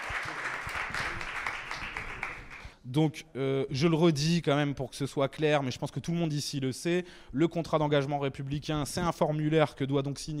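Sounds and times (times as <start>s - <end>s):
audience applause at a public gathering: 0.0s - 2.6s
speech: 2.9s - 10.3s.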